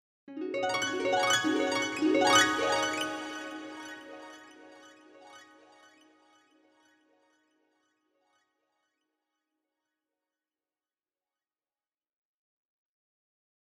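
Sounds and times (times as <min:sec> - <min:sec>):
dream harp: 0:00.3 - 0:05.6.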